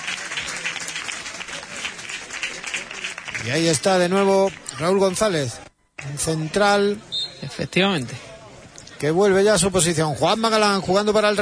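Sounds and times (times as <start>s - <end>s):
crowd applause at football match: 0.0s - 4.8s
speech: 3.4s - 8.2s, 9.0s - 11.3s.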